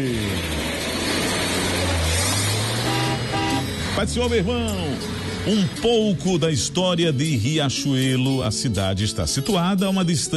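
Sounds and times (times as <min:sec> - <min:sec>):
Chevrolet Chevette car engine starting and revving: 0:00.0 - 0:06.4
speech: 0:04.0 - 0:10.3.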